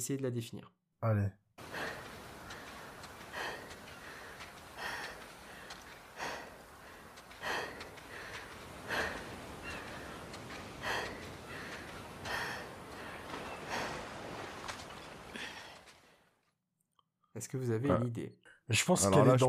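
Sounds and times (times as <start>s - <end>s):
speech: 0.0s - 1.4s, 17.5s - 19.4s
video game character breathing heavily: 1.6s - 14.2s
video game character footsteps on sand: 1.6s - 16.0s.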